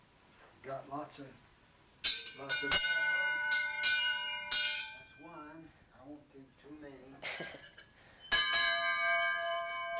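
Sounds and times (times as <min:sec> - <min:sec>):
speech: 0:00.6 - 0:01.5, 0:02.4 - 0:03.0, 0:05.6 - 0:07.8
clock bell chiming: 0:02.4 - 0:05.3, 0:08.3 - 0:09.9.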